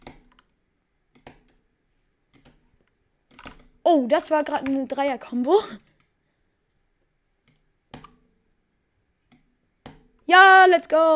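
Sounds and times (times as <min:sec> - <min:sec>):
computer mouse clicks: 0:00.0 - 0:01.6, 0:02.3 - 0:02.6, 0:03.3 - 0:03.8, 0:05.8 - 0:06.2, 0:07.4 - 0:08.2
speech: 0:03.9 - 0:05.9, 0:10.3 - 0:11.1.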